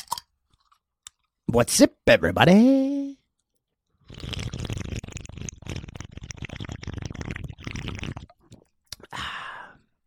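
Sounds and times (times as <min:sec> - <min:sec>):
speech: 0:01.5 - 0:03.2
person gulping and slurping a Red Bull energy drink: 0:04.0 - 0:09.8.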